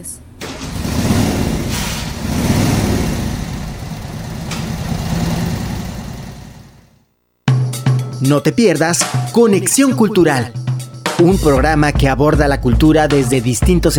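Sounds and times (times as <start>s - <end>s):
speech: 0.0s - 0.3s, 8.2s - 13.9s
motorcycle engine approaching and revving: 0.4s - 7.0s.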